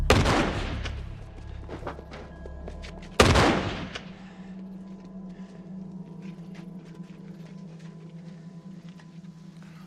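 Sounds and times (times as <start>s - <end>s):
loud gunshots fired into the air as a warning: 0.1s - 0.9s, 3.2s - 4.1s.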